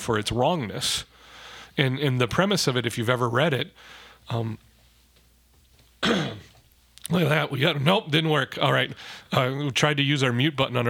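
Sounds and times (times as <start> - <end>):
speech: 0.0 - 1.1, 1.8 - 4.7, 7.1 - 10.8
rough throat clearing with a frog in the throat: 6.0 - 6.6.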